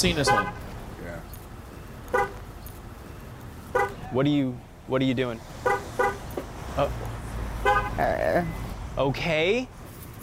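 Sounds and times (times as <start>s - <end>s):
speech: 0.0s - 1.4s, 4.1s - 5.7s, 6.8s - 7.2s, 8.0s - 9.8s
car horn chirps from a car being locked: 0.1s - 0.6s, 2.1s - 2.5s, 3.7s - 4.0s, 5.6s - 6.4s, 7.6s - 8.1s.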